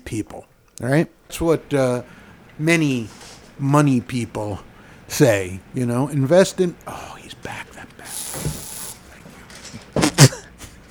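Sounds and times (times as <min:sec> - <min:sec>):
faint steady hiss: 0:00.0 - 0:10.8
speech: 0:00.1 - 0:07.6
aerosol insect spray bursts: 0:07.1 - 0:09.4.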